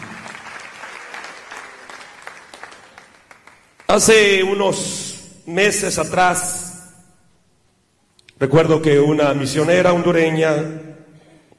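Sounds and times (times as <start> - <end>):
audience applause: 0.0 - 3.9
speech: 3.9 - 6.6, 8.4 - 10.9.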